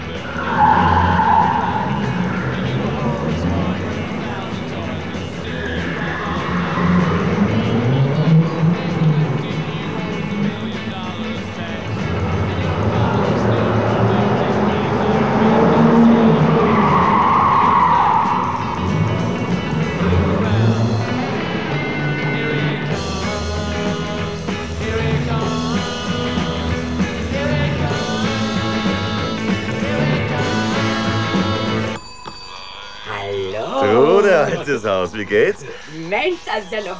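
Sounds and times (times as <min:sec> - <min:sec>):
laughter: 0:00.0 - 0:16.8, 0:32.5 - 0:36.9
speeding car engine roaring: 0:00.0 - 0:32.0
speeding car tyres screeching and skidding: 0:00.0 - 0:36.9
speech: 0:34.8 - 0:36.9.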